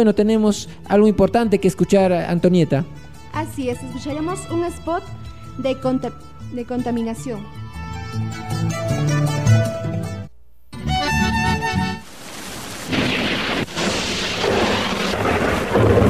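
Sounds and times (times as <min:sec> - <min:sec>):
speech: 0:00.0 - 0:09.7
music: 0:00.0 - 0:12.1
heavy rain pouring: 0:12.0 - 0:16.0
rolling thunder: 0:12.3 - 0:16.0.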